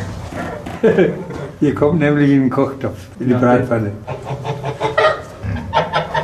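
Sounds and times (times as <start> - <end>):
speech: 0.8 - 4.4
anxious stirred-up geese in a flock cackling: 4.0 - 6.2.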